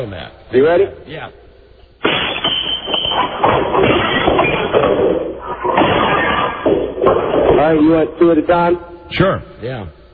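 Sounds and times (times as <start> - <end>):
speech: 0.0 - 1.4, 7.1 - 10.0
ceramic tile being smashed: 2.0 - 7.6
broken ceramic pieces clattering and scraping: 2.0 - 7.9.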